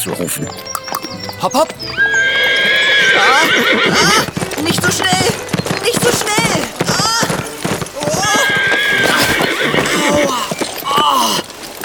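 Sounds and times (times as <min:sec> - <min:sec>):
speech: 0:00.0 - 0:02.4, 0:03.2 - 0:06.8
horse hooves clip-clopping on a fast ride: 0:00.0 - 0:11.8
horse whinnying: 0:00.0 - 0:11.8.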